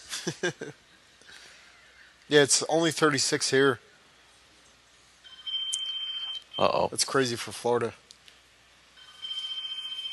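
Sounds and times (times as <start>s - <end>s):
speech: 0.2s - 0.9s, 2.3s - 3.9s, 6.6s - 8.0s
telephone ringing with a warbling electronic trill: 5.2s - 6.6s, 9.0s - 10.1s.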